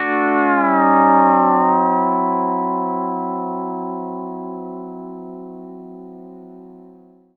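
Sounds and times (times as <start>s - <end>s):
pedal steel guitar D9 chord in country style: 0.0s - 7.0s.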